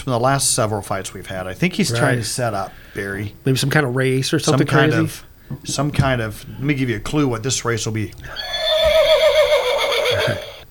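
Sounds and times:
speech: 0.0s - 8.6s, 10.1s - 10.5s
horse neighing with a long wavering whinny: 8.3s - 10.7s.

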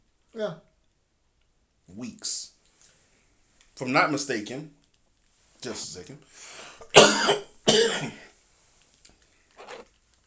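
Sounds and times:
faint small noises: 0.0s - 10.2s
speech: 0.4s - 0.7s, 1.9s - 2.5s, 3.8s - 4.8s, 5.6s - 8.2s
person clearing throat: 6.9s - 8.3s.

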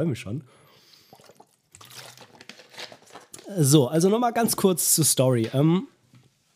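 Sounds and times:
speech: 0.0s - 0.6s, 3.5s - 6.0s
quick sip of water with slurping and swallowing: 0.8s - 3.5s.

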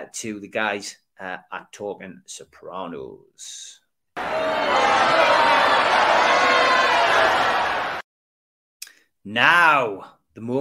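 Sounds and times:
speech: 0.0s - 7.8s, 9.2s - 10.6s
large crowd booing: 4.2s - 8.0s.

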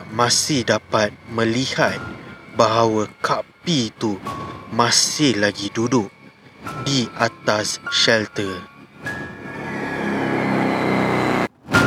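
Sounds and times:
speech: 0.1s - 8.7s
motorcycle engine revving beneath an apartment block in a housing estate: 9.0s - 11.8s.

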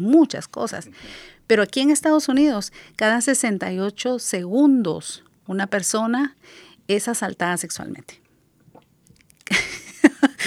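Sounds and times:
speech: 0.0s - 8.2s
breathy, rustling intake: 0.9s - 1.4s.

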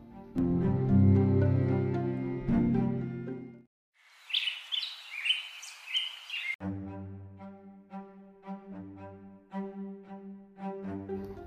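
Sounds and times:
mellow instrumental music: 0.0s - 3.7s, 6.6s - 11.4s
small bird chirping and trilling: 4.2s - 6.6s.

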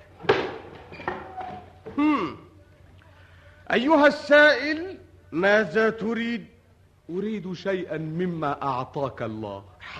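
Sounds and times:
faint creak of rooftop dwelling door: 0.4s - 2.1s
speech: 2.0s - 2.4s, 3.7s - 6.5s, 7.1s - 9.9s.

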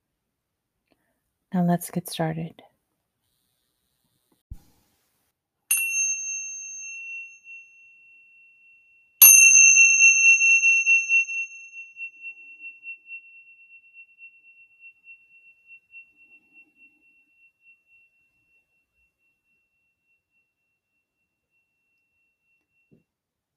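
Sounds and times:
speech: 1.6s - 2.7s
Tibetan bells chiming: 5.7s - 23.0s.

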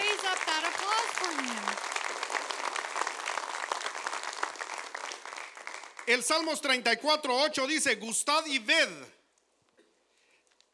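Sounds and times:
audience applauding loudly: 0.0s - 6.8s
speech: 6.1s - 9.2s.

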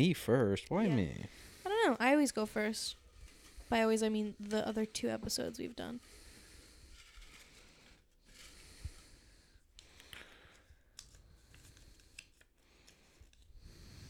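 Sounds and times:
speech: 0.0s - 3.0s, 3.7s - 6.2s
heavy breathing into a microphone: 3.1s - 3.9s, 6.0s - 10.8s, 12.9s - 14.0s.

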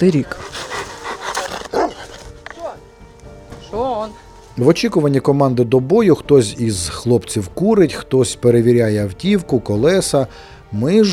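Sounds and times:
speech: 0.0s - 0.8s, 3.8s - 11.1s
movement and murmuring: 0.0s - 2.8s
Rottweiler barking and yelping at an army unit's position: 0.5s - 2.3s.

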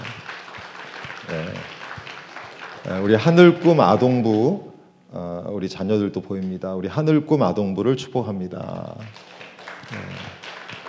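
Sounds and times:
church audience clapping: 0.0s - 4.6s, 8.9s - 10.8s
speech: 2.8s - 4.7s, 5.6s - 9.3s, 9.9s - 10.4s.

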